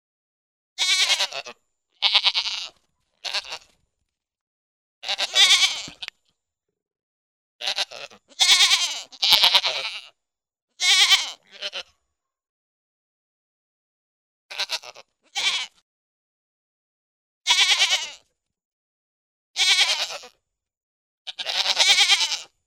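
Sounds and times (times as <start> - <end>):
goat bleating: 0.8 - 3.8, 5.0 - 6.1, 7.6 - 10.2, 10.8 - 11.9, 14.5 - 15.8, 17.5 - 18.2, 19.6 - 20.4, 21.3 - 22.6.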